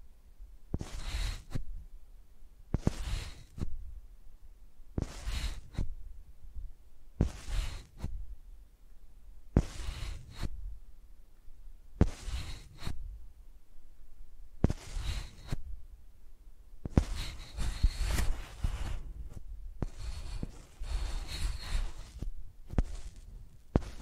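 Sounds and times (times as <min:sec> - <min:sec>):
microphone dragged across a surface like a pencil: 0:00.7 - 0:01.7, 0:02.7 - 0:03.8, 0:05.0 - 0:05.9, 0:07.2 - 0:08.2, 0:09.6 - 0:10.6, 0:12.0 - 0:13.2, 0:14.6 - 0:15.7, 0:16.8 - 0:24.0.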